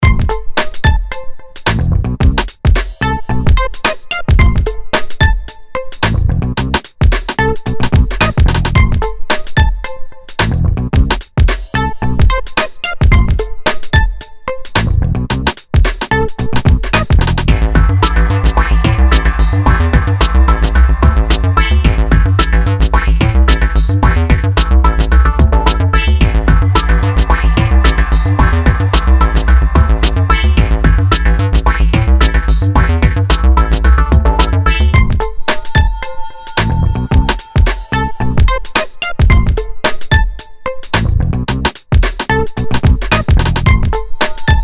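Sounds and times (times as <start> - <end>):
urban beat synth: 0.0 - 6.2, 6.8 - 44.6.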